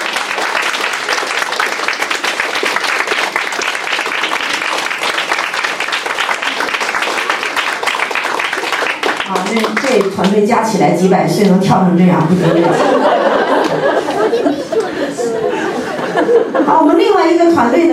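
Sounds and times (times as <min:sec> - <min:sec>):
sizable crowd applauding with dense rapid clapping: 0:00.0 - 0:10.4, 0:12.4 - 0:16.3
speech: 0:09.5 - 0:17.9
laughter: 0:12.2 - 0:17.2.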